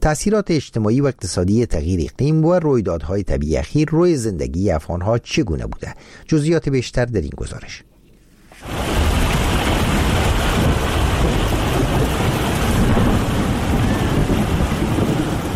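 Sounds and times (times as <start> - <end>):
speech: 0.0 - 7.9
deep thunder rumbling: 8.6 - 15.5
heavy rain: 8.6 - 15.5.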